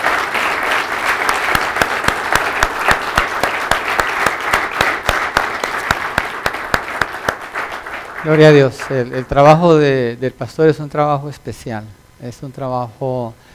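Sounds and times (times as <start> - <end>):
church congregation giving loud applause: 0.0 - 9.5
speech: 8.2 - 13.5.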